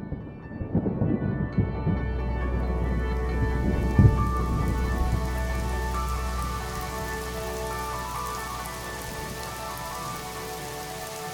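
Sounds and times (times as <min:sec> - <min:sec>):
rumble of thunder in a desert monsoon thunderstorm: 0:00.0 - 0:10.2
monsoon rain pattering on a surface in the desert: 0:00.5 - 0:11.3.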